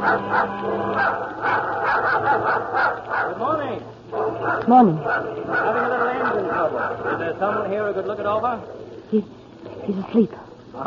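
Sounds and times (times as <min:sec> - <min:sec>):
dog growling aboard a small bait barge: 0:00.0 - 0:03.5, 0:04.1 - 0:09.0
speech: 0:04.6 - 0:10.8.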